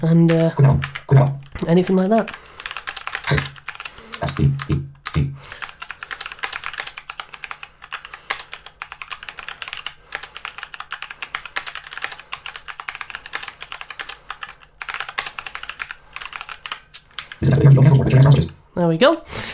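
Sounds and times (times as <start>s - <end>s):
speech: 0.0s - 2.5s, 4.2s - 5.6s, 18.8s - 19.4s
typing on a Mac computer keyboard: 0.3s - 17.5s.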